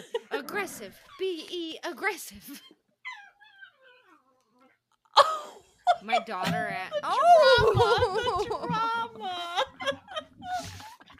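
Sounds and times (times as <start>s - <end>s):
speech: 0.0s - 2.8s, 6.0s - 9.6s
dog whining: 2.6s - 4.8s
laughter: 5.2s - 11.1s.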